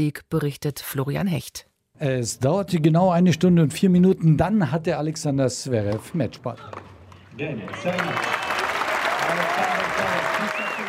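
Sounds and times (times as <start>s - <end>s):
speech: 0.0s - 8.5s, 9.3s - 10.8s
large stadium crowd applauding and cheering after match point: 7.4s - 10.8s.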